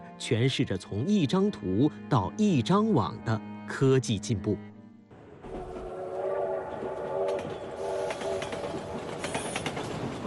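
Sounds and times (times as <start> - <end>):
speech: 0.2 - 4.7
high-speed train in China running on rails: 5.1 - 10.2
high-speed train wheels clicking on rails: 6.7 - 10.2.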